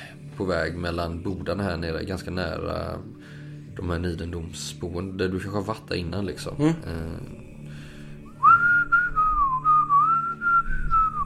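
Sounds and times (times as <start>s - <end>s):
speech: 0.4s - 7.5s
man whistling a melodic tune while carrying firewood: 8.2s - 11.2s.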